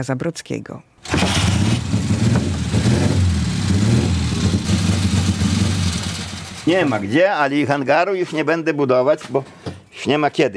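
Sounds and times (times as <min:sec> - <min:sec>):
speech: 0:00.0 - 0:01.7, 0:06.6 - 0:10.5
motorcycle engine idling and revving: 0:01.0 - 0:07.0.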